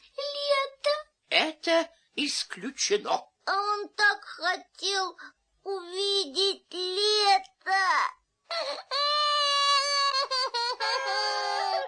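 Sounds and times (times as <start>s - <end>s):
speech: 1.6s - 9.4s
person wailing and sobbing: 8.5s - 11.8s.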